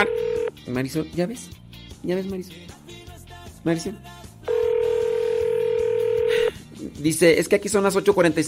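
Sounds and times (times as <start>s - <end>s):
loud electronic telephone ringing tone of a call to a bookstore: 0.0s - 0.6s, 4.5s - 6.5s
speech: 0.0s - 2.9s, 3.6s - 4.2s, 6.8s - 8.4s.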